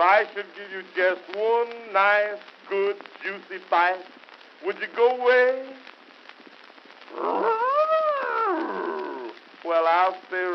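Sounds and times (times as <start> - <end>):
speech: 0.0 - 5.9, 7.1 - 7.5, 9.6 - 10.5
bear growling: 7.1 - 9.4.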